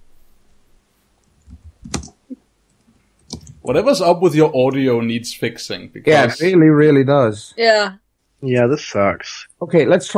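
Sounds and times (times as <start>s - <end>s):
typing on a computer keyboard: 1.4s - 2.2s, 3.2s - 3.6s
speech: 3.7s - 10.1s.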